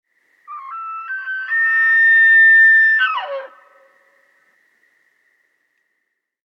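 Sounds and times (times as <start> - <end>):
elk bugling: 0.5 - 4.5.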